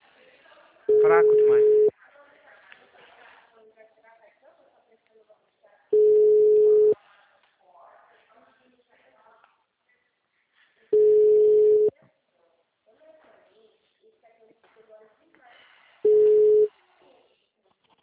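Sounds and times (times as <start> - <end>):
telephone line tone beeps after a dropped call: 0.9 - 1.9, 6.0 - 7.0, 11.0 - 11.9, 16.0 - 16.7
speech: 1.0 - 1.8.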